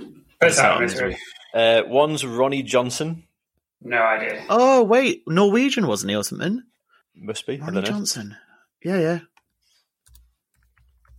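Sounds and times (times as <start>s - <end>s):
speech: 0.4s - 9.3s
typing on a computer keyboard: 10.0s - 11.1s.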